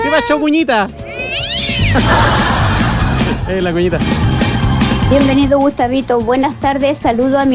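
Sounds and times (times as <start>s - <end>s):
speech: 0.1s - 2.6s, 3.5s - 4.3s, 5.1s - 7.5s
cat meowing: 1.0s - 2.1s
laughter: 1.8s - 5.0s.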